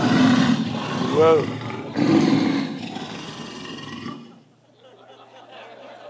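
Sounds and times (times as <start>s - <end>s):
lion giving a deep rumbling roar: 0.0s - 4.4s
speech: 1.2s - 2.6s
laughter: 4.6s - 6.0s.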